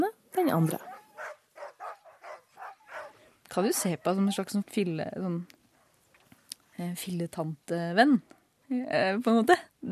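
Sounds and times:
speech: 0:00.5 - 0:00.9, 0:03.5 - 0:05.6, 0:06.8 - 0:09.9
excited sled dogs barking: 0:00.7 - 0:04.6.

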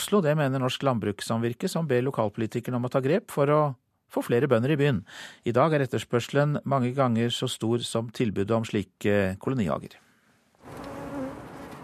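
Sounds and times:
speech: 0:00.1 - 0:10.0
honeybees buzzing at an allotment garden in Bjørvika Oslo Norway: 0:10.6 - 0:11.8.

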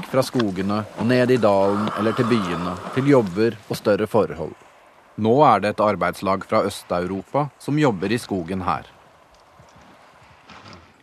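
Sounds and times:
horse hooves clip-clopping: 0:00.0 - 0:04.0, 0:08.0 - 0:11.0
speech: 0:00.1 - 0:04.6, 0:05.2 - 0:09.0.

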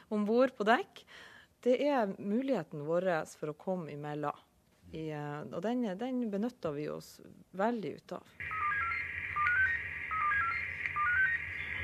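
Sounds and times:
speech: 0:00.1 - 0:08.8
ship radio quick stepped electronic beeps calling coast radio station: 0:08.4 - 0:11.8
ship radio static hiss: 0:08.4 - 0:11.8.

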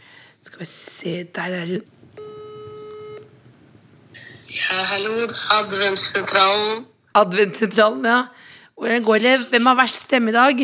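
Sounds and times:
speech: 0:00.6 - 0:02.2, 0:04.5 - 0:10.6
quiet telephone line noise: 0:02.2 - 0:03.3
telephone ring tone: 0:02.2 - 0:03.3.

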